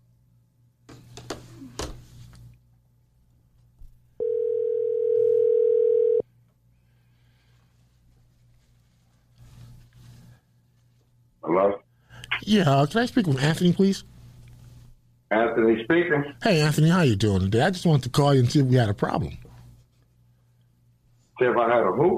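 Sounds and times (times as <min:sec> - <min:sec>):
low hum: 0:00.0 - 0:22.1
telephone dial tone: 0:04.2 - 0:06.2
speech: 0:12.5 - 0:14.1, 0:15.6 - 0:19.4.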